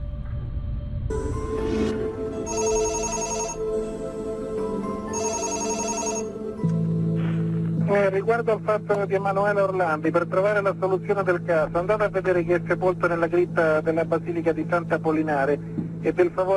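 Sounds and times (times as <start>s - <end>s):
low steady drone: 0.0s - 16.5s
telephone ringing: 2.5s - 3.8s, 5.1s - 6.4s
speech: 8.2s - 16.5s.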